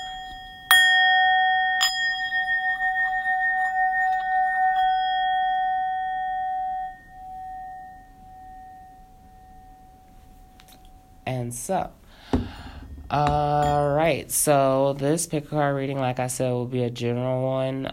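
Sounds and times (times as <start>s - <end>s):
metallic bell struck and ringing: 0.0s - 11.3s
speech: 11.3s - 12.0s, 13.1s - 17.9s.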